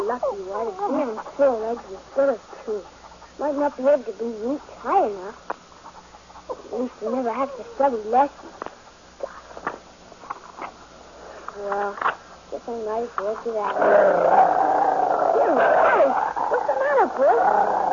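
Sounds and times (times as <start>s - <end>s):
dog growling: 0.0s - 5.4s, 13.6s - 17.9s
speech: 0.1s - 5.6s, 6.5s - 8.7s, 11.6s - 14.8s, 15.4s - 16.4s, 17.0s - 17.9s.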